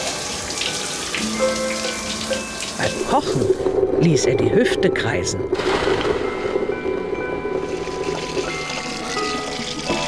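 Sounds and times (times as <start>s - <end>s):
shower water running: 0.0s - 3.9s, 5.6s - 10.0s
speech: 3.1s - 6.2s.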